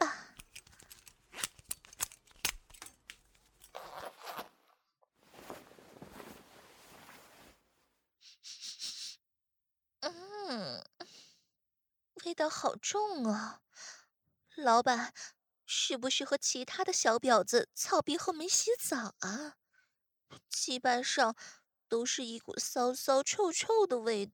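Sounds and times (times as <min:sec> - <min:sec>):
fabric rustling: 0:00.4 - 0:08.0
trouser zipper being pulled open: 0:03.5 - 0:07.6
speech: 0:12.3 - 0:13.6, 0:14.6 - 0:19.6, 0:20.5 - 0:24.3.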